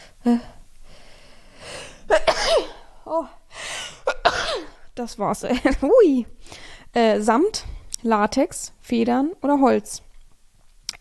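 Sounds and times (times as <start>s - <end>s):
speech: 0.2s - 0.5s, 5.0s - 10.1s
rising breathy inhale: 0.8s - 2.1s, 6.4s - 6.9s
sharp explosive sneeze: 2.1s - 2.9s.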